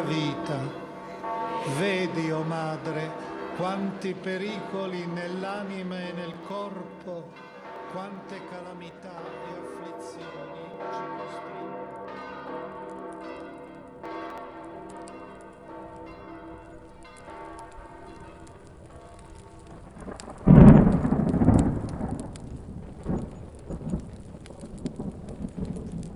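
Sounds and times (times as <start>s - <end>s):
heavy rain during a strong thunderstorm in Naples: 0.0s - 5.2s, 14.9s - 26.1s
speech: 0.1s - 0.8s, 1.6s - 11.7s
deep crash of thunder: 16.8s - 26.1s.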